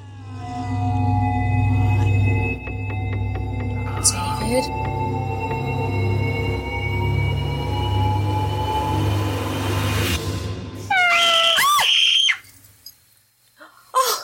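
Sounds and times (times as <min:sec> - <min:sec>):
steady low rumble: 0:00.0 - 0:10.9
cat meowing: 0:10.9 - 0:11.9.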